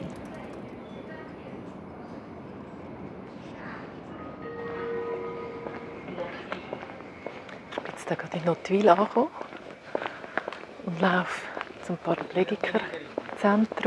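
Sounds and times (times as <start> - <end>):
moving train rumbling on the way via Lucerne to Nottwil in Switzerland: 0.0 - 13.8
brief high whining tone: 4.4 - 6.9
speech: 8.1 - 9.5, 11.0 - 13.8.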